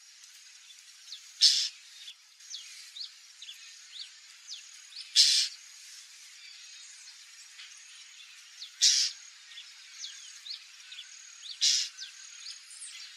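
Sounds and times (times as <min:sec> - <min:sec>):
white-banded mockingbird singing: 0:01.4 - 0:01.8, 0:08.6 - 0:09.2, 0:10.0 - 0:13.1.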